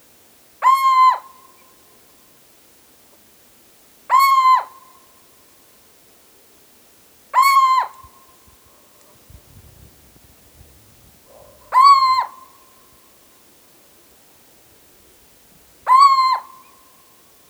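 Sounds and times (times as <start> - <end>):
female owl contact call: 0.6 - 1.6, 7.4 - 8.2, 11.3 - 12.7, 15.8 - 16.8.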